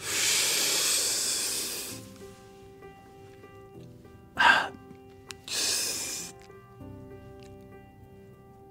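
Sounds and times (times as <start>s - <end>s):
sharp breathy gasping inhales: 0.0s - 2.1s, 5.4s - 6.4s.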